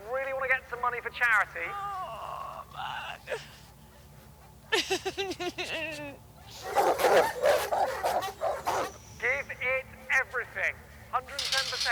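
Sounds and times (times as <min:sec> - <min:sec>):
speech: 0:01.0 - 0:02.0, 0:02.8 - 0:03.6, 0:04.7 - 0:11.9
hounds yelping and barking: 0:06.4 - 0:09.1.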